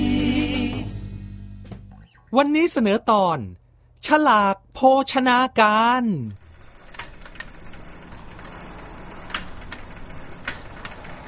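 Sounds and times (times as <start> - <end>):
speech: 2.3 - 6.4
bicycle being pedalled with steady mechanical whir: 5.7 - 11.2
bicycle freewheel ratchet clicking while pedalled: 6.4 - 11.2.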